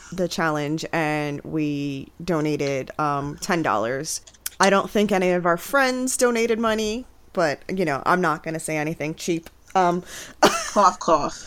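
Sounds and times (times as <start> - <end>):
speech: 0.1 - 11.4
person faking a cough: 10.4 - 10.9.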